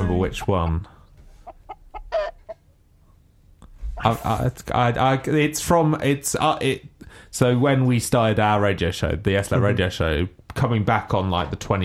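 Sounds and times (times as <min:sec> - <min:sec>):
hen clucking: 0:00.0 - 0:02.8
speech: 0:00.1 - 0:01.0, 0:04.0 - 0:11.8.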